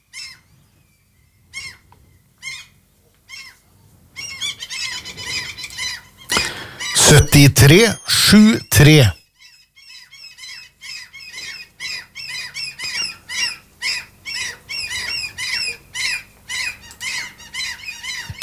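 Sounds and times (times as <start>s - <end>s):
gulls squawking: 4.2s - 9.1s, 10.0s - 18.4s
speech: 7.1s - 9.2s.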